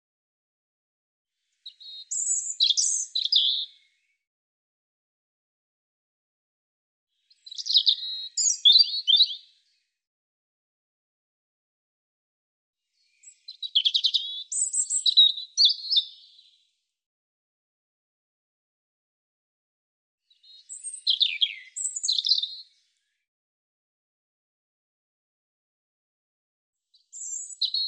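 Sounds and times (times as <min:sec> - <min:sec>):
European robin song of high thin warbles and trills: 0:01.6 - 0:03.7, 0:07.3 - 0:09.5, 0:13.0 - 0:16.4, 0:20.3 - 0:22.6, 0:27.1 - 0:27.8.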